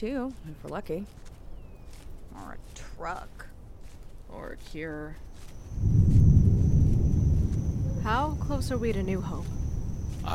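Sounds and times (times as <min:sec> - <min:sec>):
speech: 0:00.0 - 0:01.3, 0:02.4 - 0:03.5, 0:04.3 - 0:06.0, 0:08.0 - 0:09.6
thunder from a passing storm: 0:05.6 - 0:10.3.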